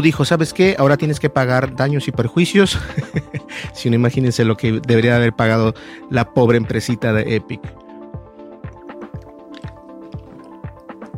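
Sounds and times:
speech: 0.0s - 7.8s
laughter: 2.7s - 3.5s
person gulping water: 7.7s - 11.1s.

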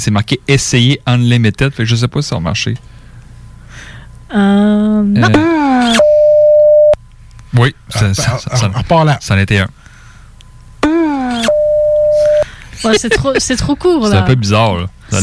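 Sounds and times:
speech: 0.0s - 3.0s, 4.3s - 6.1s, 7.5s - 9.8s, 12.8s - 15.2s
faint hum: 0.0s - 15.2s
telephone ringtone: 5.4s - 7.0s, 10.8s - 12.4s.

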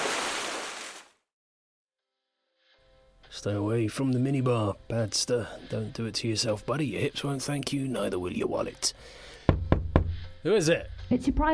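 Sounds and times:
body plunging into water in a cannonball jump: 0.0s - 1.1s
speech: 3.3s - 9.3s, 10.4s - 11.5s.

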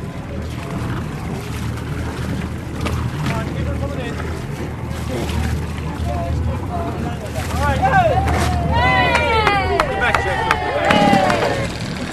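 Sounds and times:
ferry engine rumbling low while docking: 0.0s - 12.1s
wind buffeting microphone: 0.0s - 12.1s
people calling out: 7.8s - 11.8s.

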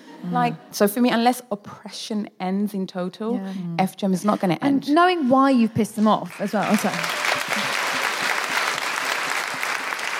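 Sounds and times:
speech: 0.2s - 7.6s
audience applause: 6.3s - 10.1s.

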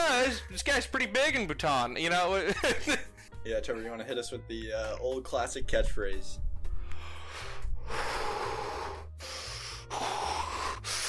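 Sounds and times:
speech: 0.3s - 6.5s
exaggerated breathing: 6.7s - 11.0s.

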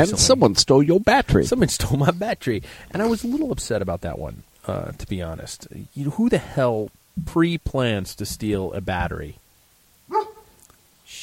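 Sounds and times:
speech: 0.0s - 9.4s
soft hissing: 1.9s - 11.2s
dog barking: 10.1s - 10.6s.

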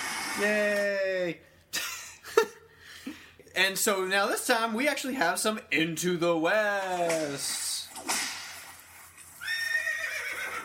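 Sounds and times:
speech: 0.4s - 1.5s, 3.6s - 7.6s
horse neighing with snort and shrill whinny: 9.4s - 10.6s.

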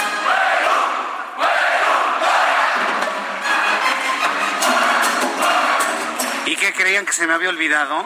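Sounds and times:
large crowd chanting a university battle cry in unison: 0.1s - 6.3s
speech: 6.9s - 8.0s.

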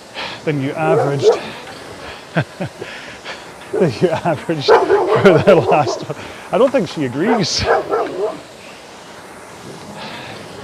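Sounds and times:
speech: 0.4s - 1.6s, 2.3s - 3.0s, 3.7s - 8.0s
laughter: 0.5s - 8.3s
dog barking: 0.8s - 1.5s, 3.7s - 4.0s, 4.6s - 6.1s, 7.2s - 8.5s.

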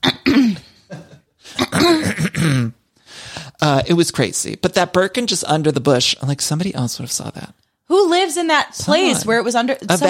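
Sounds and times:
person imitating throat clearing as an acted character quirk: 0.0s - 2.9s
speech: 3.8s - 10.0s.

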